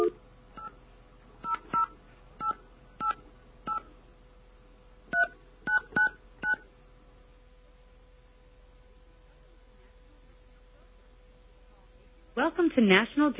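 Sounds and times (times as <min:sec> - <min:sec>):
faint hum: 0:00.0 - 0:13.3
touch-tone telephone number being dialed: 0:05.2 - 0:06.6
speech: 0:12.4 - 0:13.3.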